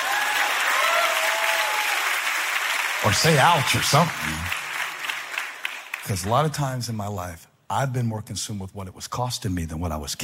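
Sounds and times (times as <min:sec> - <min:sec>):
audience applause: 0:00.0 - 0:06.6
speech: 0:03.0 - 0:04.6, 0:06.1 - 0:10.2.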